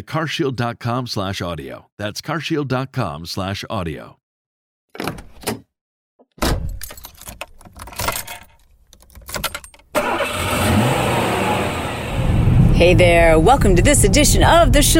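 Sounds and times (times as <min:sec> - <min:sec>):
speech: 0:00.0 - 0:04.2, 0:04.9 - 0:05.6, 0:12.8 - 0:14.9
car keys jingling and clattering in the front seat of a car: 0:06.7 - 0:10.2
car engine turning over and rumbling: 0:09.9 - 0:14.9.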